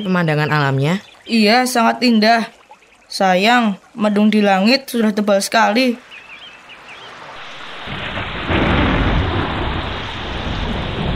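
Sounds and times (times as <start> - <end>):
speech: 0.0 - 6.1
heavy rain in a stormy downpour: 5.8 - 11.1
low rumbling thunder: 7.2 - 11.1.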